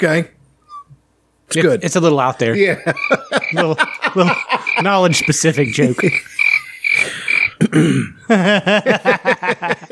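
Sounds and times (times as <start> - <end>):
speech: 0.0 - 0.4, 1.5 - 9.9
laughter: 2.6 - 7.6, 8.2 - 9.9
cricket chirping sound effect: 2.9 - 7.6.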